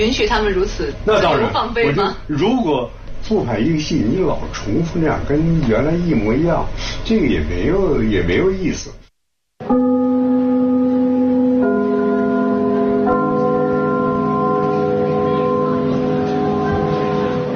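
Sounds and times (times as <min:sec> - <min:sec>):
speech: 0:00.0 - 0:09.0
theater curtain-opening bell chime: 0:09.6 - 0:17.5.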